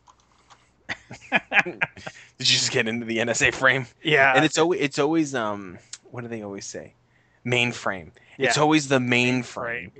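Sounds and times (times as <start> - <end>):
rapid mashing on a computer keyboard: 0.0 - 0.6
laughter: 0.9 - 2.8, 4.1 - 4.5
speech: 1.3 - 9.9.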